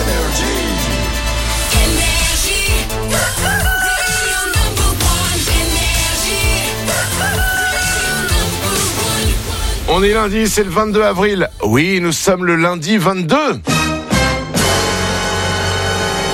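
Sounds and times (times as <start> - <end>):
dense busy layered music: 0.0 - 12.4, 13.6 - 16.3
rooster crowing: 3.2 - 4.7, 6.9 - 8.5
speech: 10.0 - 13.8.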